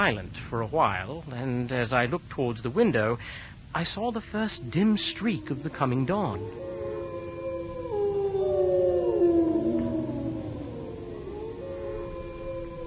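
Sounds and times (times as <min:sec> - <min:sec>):
speech: 0:00.0 - 0:06.7
chorus of wolves howling: 0:04.1 - 0:12.8.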